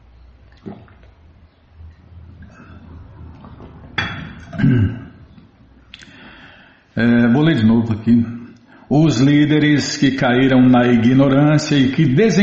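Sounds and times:
liquid pouring: 0.3 - 6.0
gulping swallow: 0.5 - 6.2
speech: 4.6 - 5.0, 7.0 - 12.4.

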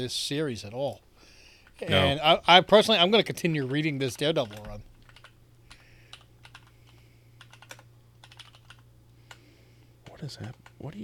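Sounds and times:
speech: 0.0 - 1.1, 1.8 - 4.9, 10.2 - 11.0
steady low electrical hum: 0.0 - 11.0
clicking of keys on a computer keyboard: 3.6 - 9.4.

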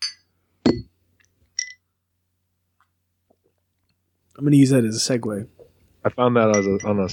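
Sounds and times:
glasses clinking in a toast: 0.0 - 0.9, 1.6 - 1.8, 6.4 - 7.1
speech: 4.4 - 7.1.

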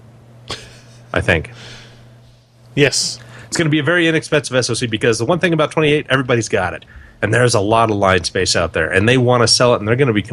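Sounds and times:
low electrical hum: 0.0 - 10.3
person sneezing: 0.5 - 0.8
speech: 1.2 - 1.9, 2.8 - 10.3.

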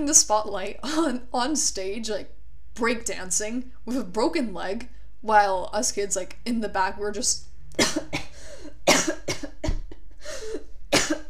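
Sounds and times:
speech: 0.0 - 8.1
cough attack of harsh coughs: 7.8 - 11.2.

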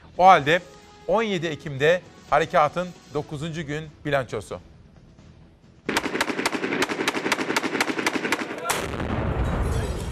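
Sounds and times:
speech: 0.2 - 4.7
gunfire during street fighting in a city centre: 5.9 - 9.9.

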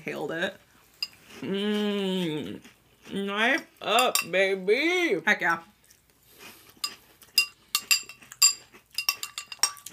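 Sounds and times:
speech: 0.0 - 0.7, 1.3 - 5.7
spoon clinking in a bowl while eating cereal: 4.0 - 4.4, 6.8 - 9.9.

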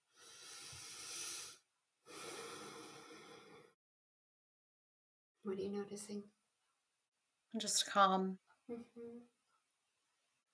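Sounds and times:
deep breath during a tapping relaxation session: 0.0 - 3.8
speech: 5.4 - 6.4, 7.5 - 9.4.

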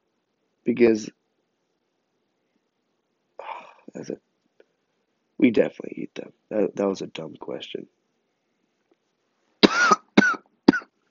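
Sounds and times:
speech: 0.6 - 1.2, 4.0 - 4.3, 5.4 - 8.0
raspy struggling coughs from a person with a hoarse voice: 9.6 - 10.9.

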